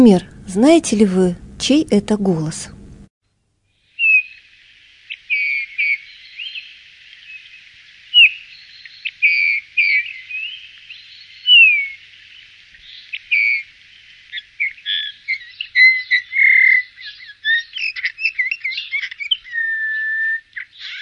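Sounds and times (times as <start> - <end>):
speech: 0.0 - 2.8
Eurasian bullfinch singing piping whistles and scratchy notes: 3.9 - 21.0.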